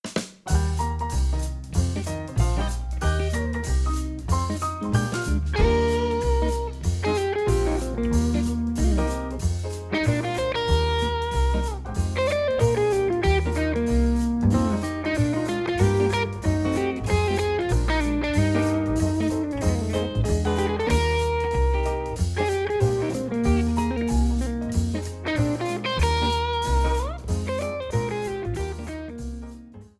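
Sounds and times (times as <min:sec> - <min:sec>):
jazz arrangement background music: 0:00.2 - 0:29.9.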